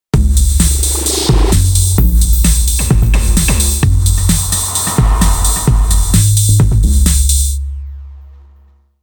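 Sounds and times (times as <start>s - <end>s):
drum with effects: 0.2s - 8.1s.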